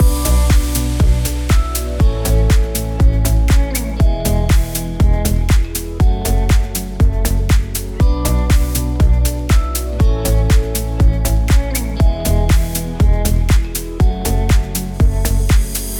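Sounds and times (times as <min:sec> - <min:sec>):
full music mix: 0:00.0 - 0:15.9.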